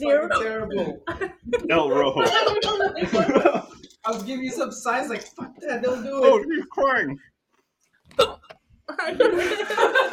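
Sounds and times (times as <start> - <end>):
speech: 0.0 - 3.5, 4.1 - 7.3, 8.2 - 10.1
laughter: 1.1 - 3.8, 9.0 - 10.1
hiccups: 8.1 - 8.6.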